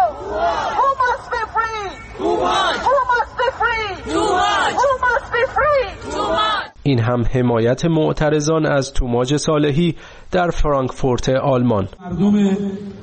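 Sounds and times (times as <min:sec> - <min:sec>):
crowd of protesters chanting a name in unison: 0:00.1 - 0:01.1, 0:02.1 - 0:06.8
speech: 0:06.9 - 0:13.0.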